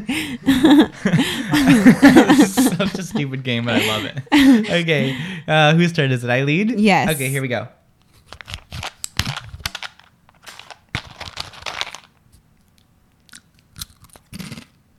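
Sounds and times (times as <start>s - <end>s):
laughter: 0.0s - 5.7s
speech: 0.0s - 7.8s
crunching and chewing on chocolate spread sticks snacks: 8.2s - 14.8s.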